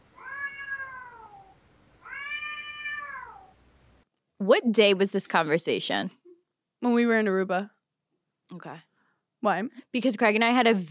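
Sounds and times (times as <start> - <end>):
cats yowling while mating: 0.2 - 3.6
speech: 4.4 - 6.2, 6.8 - 7.8, 8.5 - 10.9.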